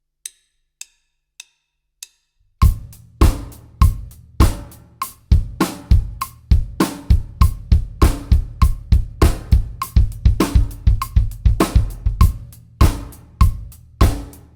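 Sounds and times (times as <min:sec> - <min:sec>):
bass drum: 0:02.6 - 0:14.5.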